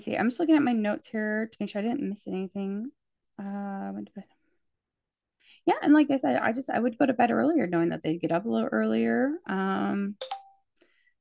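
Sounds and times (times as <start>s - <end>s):
speech: 0.0s - 4.4s, 5.6s - 10.4s
mobile phone electronic chimes: 10.2s - 10.7s.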